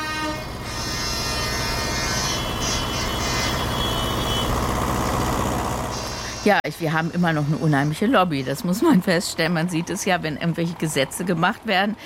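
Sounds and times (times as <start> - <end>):
buzzing tonal horn blares: 0.0 - 9.2
heavy diesel engines rumbling: 0.0 - 12.0
speech: 6.4 - 12.0.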